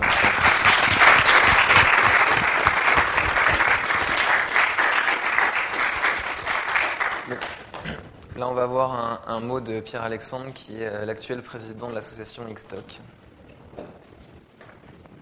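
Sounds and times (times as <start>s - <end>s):
audience applause at an entrepreneurship conference: 0.0s - 7.9s
speech: 8.5s - 13.2s.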